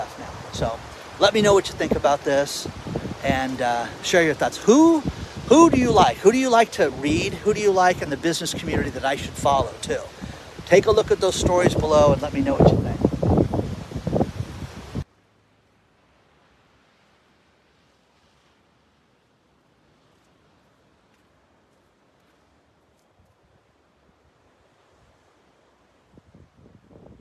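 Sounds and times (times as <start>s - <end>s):
outdoor wind gusts buffeting the microphone: 0.0s - 15.0s, 26.0s - 27.1s
speech: 0.6s - 12.9s.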